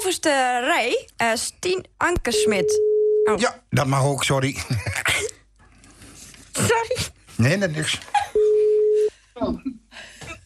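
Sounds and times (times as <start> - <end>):
speech: 0.0 - 5.4, 6.6 - 8.2, 9.4 - 9.8
telephone tone on an outgoing call: 2.4 - 3.4, 8.4 - 9.1.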